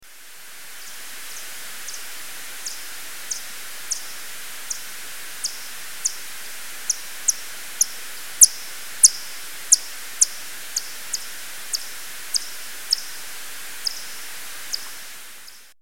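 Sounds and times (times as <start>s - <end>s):
little brown bat calls: 0.8s - 15.8s.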